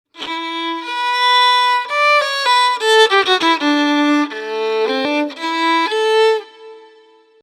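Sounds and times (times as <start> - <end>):
improvised violin: 0.1 - 7.4.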